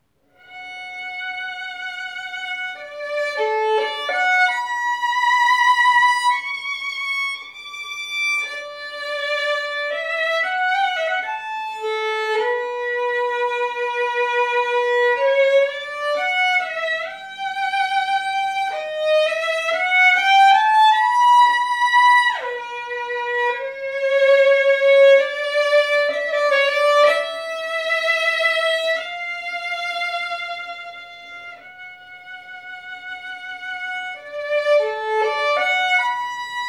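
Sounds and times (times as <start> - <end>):
violin piece on a Stradivarius: 0.4 - 36.6.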